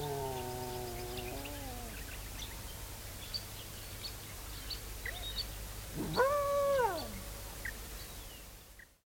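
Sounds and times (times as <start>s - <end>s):
dingo howling: 0.0s - 2.0s, 6.0s - 7.2s
steady background hiss: 0.0s - 9.0s.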